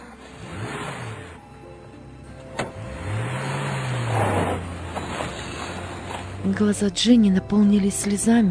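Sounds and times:
car engine revving and pulling away: 0.0s - 1.6s, 2.2s - 6.8s
road noise: 0.0s - 8.5s
speech: 6.4s - 8.5s.

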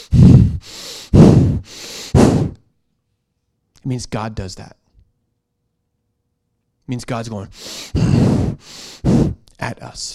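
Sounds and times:
person breathing hard and fast through the nose in anger: 0.0s - 2.6s, 7.5s - 9.5s
speech: 3.8s - 4.8s, 6.9s - 8.8s, 9.6s - 10.1s.

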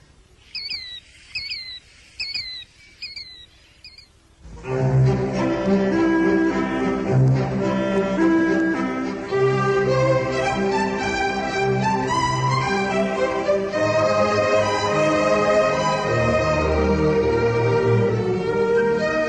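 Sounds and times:
killdeer calling: 0.0s - 4.4s
music: 4.5s - 19.2s.

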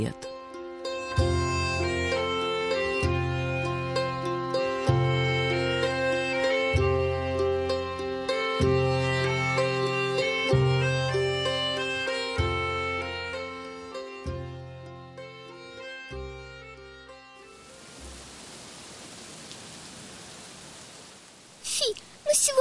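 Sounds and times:
speech: 0.0s - 0.2s
music: 0.0s - 18.2s
heavy rain pouring: 17.4s - 22.5s.

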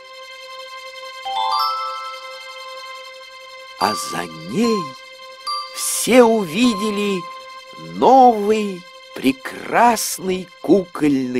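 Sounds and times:
gentle chime ringing as small door opens: 1.3s - 2.8s, 3.8s - 7.5s
shimmering bell-like tones: 1.3s - 3.1s, 3.8s - 7.9s
speech: 3.8s - 5.0s, 5.8s - 11.3s.

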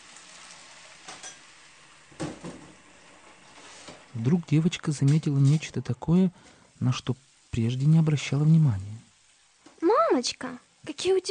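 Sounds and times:
running water hiss in a kitchen: 0.0s - 11.2s
crockery clinking and clattering: 1.1s - 1.5s
speech: 4.2s - 9.0s, 10.2s - 11.2s.

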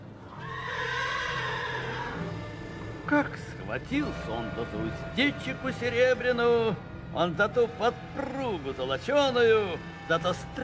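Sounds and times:
warhorse whinnying: 0.2s - 2.8s
speech: 3.1s - 10.6s.

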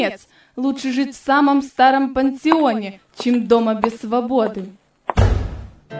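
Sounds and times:
speech: 0.0s - 4.8s
door slamming shut: 5.1s - 5.8s.

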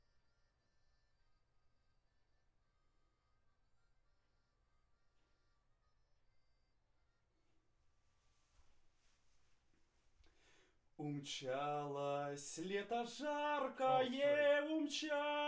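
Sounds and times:
vocal recorded with condenser microphone: 11.0s - 15.4s.

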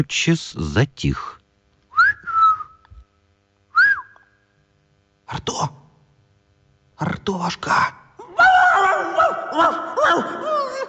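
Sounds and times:
speech: 0.0s - 1.4s, 5.3s - 5.8s, 7.0s - 8.0s, 9.2s - 10.6s
boy whistling through a vent in a garden wall: 1.9s - 2.8s, 3.7s - 4.4s.

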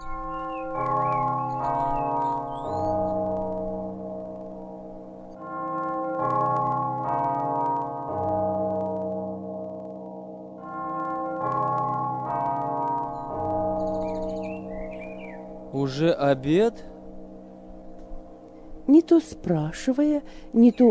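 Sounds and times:
faint bird chirps: 0.0s - 3.4s, 13.0s - 16.0s
large bell tolling: 0.0s - 18.8s
speech: 15.9s - 16.9s, 18.9s - 20.8s.

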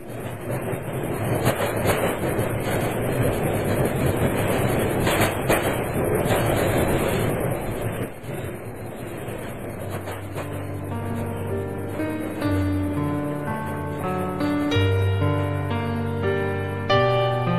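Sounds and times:
train wheels clacking over track joints: 0.0s - 15.5s
train rumbling along the rails: 0.0s - 17.5s.

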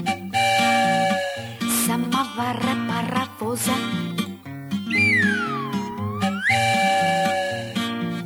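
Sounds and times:
cartoonish steam-engine whistle of a samovar-locomotive: 0.1s - 1.9s, 4.9s - 8.1s
speech: 2.5s - 2.7s, 3.5s - 4.0s
bouncy music: 4.9s - 7.6s.

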